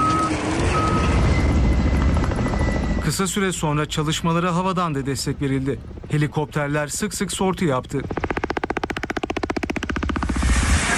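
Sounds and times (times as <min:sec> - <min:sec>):
construction machinery reversing beeps at a wildfire: 0:00.0 - 0:03.6
construction machinery engines rumbling: 0:00.0 - 0:10.9
speech: 0:03.2 - 0:08.3.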